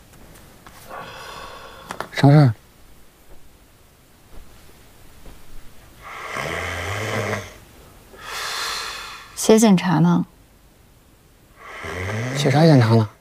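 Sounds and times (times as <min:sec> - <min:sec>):
person snoring: 0:00.9 - 0:02.0, 0:06.0 - 0:07.6, 0:11.6 - 0:13.1
faint rustling: 0:01.8 - 0:06.0
speech: 0:02.2 - 0:02.6, 0:09.6 - 0:10.3, 0:12.4 - 0:13.1.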